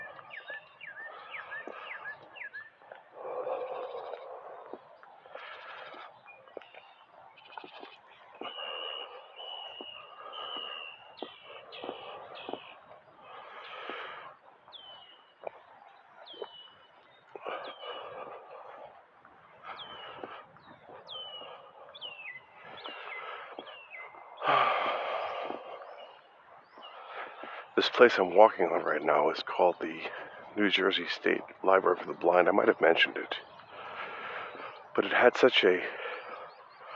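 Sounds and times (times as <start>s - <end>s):
birds calling outdoors: 0.0s - 36.9s
speech: 27.8s - 33.5s, 35.0s - 36.0s.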